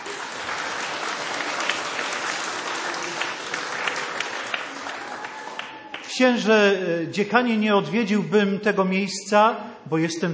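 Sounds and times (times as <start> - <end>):
large audience applauding warmly: 0.0 - 6.2
speech: 6.2 - 10.3.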